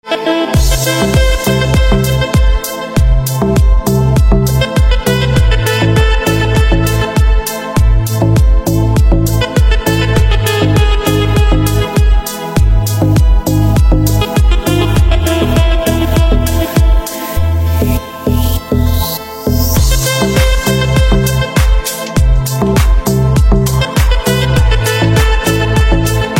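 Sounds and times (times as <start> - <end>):
saxophone instrumental ringtone: 0.0 - 26.3.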